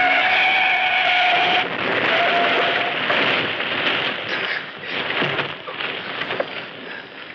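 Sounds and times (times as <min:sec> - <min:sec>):
loud car tire screech: 0:00.0 - 0:03.2
rattling debris from car and truck crash: 0:00.0 - 0:07.3.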